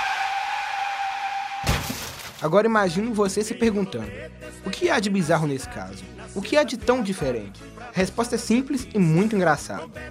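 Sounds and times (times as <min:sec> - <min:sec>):
car tires screeching in a skid: 0:00.0 - 0:01.7
car crash impact: 0:01.6 - 0:02.4
speech: 0:02.4 - 0:10.0.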